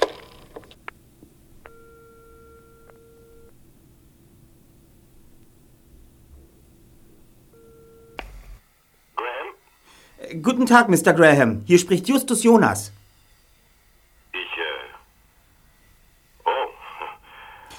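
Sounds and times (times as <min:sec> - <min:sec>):
telephone ringback tone in the line: 0:01.7 - 0:03.5, 0:07.5 - 0:08.2
constant hiss on a telephone line: 0:08.2 - 0:17.7
speech: 0:10.3 - 0:13.0.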